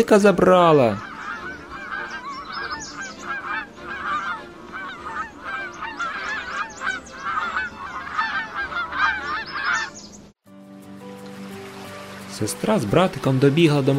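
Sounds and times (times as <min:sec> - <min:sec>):
speech: 0:00.0 - 0:01.1, 0:12.4 - 0:13.9
geese honking: 0:00.2 - 0:10.2.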